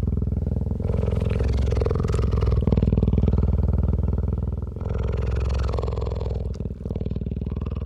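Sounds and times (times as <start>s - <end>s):
big cat purring deeply while resting beneath a tree: 0.0s - 7.8s.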